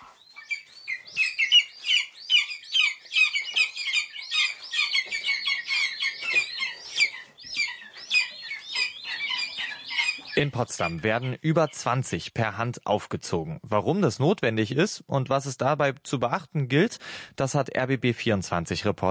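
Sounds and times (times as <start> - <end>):
hungry lesser spotted eagle chicks calling loudly at a hand-rearing station: 0.0 - 12.4
speech: 10.4 - 19.0.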